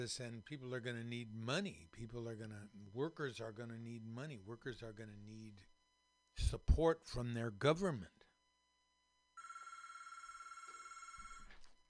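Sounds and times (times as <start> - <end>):
speech: 0.0 - 5.7, 6.4 - 8.2
telephone bell ringing: 9.4 - 11.6.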